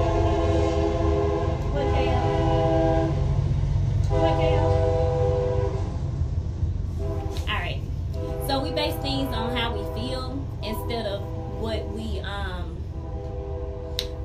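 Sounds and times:
long sustained train horn blasts: 0:00.0 - 0:03.3, 0:04.0 - 0:05.9, 0:06.9 - 0:14.2
train rumbling past: 0:00.0 - 0:14.2.

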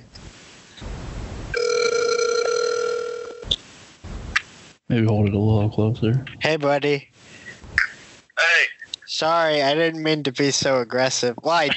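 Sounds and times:
phone line noise: 0:00.0 - 0:09.3
phone ringing tone heard through a handset: 0:01.5 - 0:03.6
speech: 0:04.9 - 0:07.3, 0:09.2 - 0:11.7.

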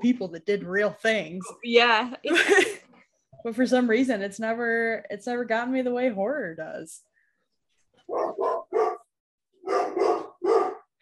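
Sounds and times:
speech: 0:00.0 - 0:02.8, 0:03.4 - 0:07.1, 0:08.1 - 0:08.6
large dog barking at the mailman: 0:08.1 - 0:10.9.

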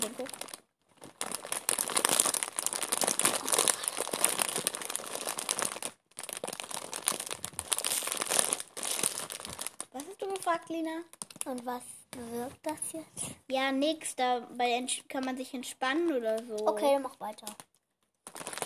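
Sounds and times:
plastic bag crinkling: 0:00.0 - 0:11.7, 0:16.4 - 0:18.6
speech: 0:10.5 - 0:17.7.

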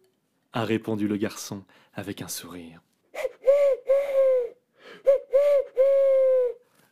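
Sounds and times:
speech: 0:00.6 - 0:02.9
person imitating owl hoots: 0:03.2 - 0:06.6.

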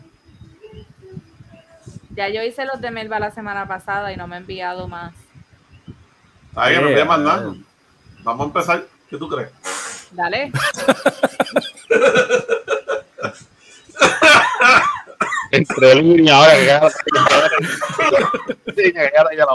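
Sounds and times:
speech: 0:02.2 - 0:05.2, 0:06.6 - 0:12.3, 0:15.8 - 0:19.5
laughter: 0:10.5 - 0:15.9, 0:16.5 - 0:18.8
person coughing: 0:14.0 - 0:16.0, 0:16.6 - 0:18.6.

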